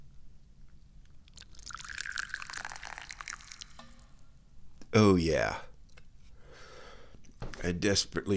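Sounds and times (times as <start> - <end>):
hot tea pouring into a cup: 1.3 - 4.2
speech: 5.0 - 5.7, 7.6 - 8.3.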